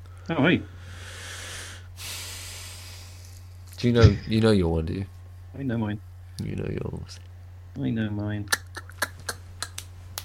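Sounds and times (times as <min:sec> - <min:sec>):
low steady hum: 0:00.0 - 0:10.2
heavy breathing: 0:00.1 - 0:03.5
speech: 0:00.3 - 0:00.8, 0:03.8 - 0:08.6.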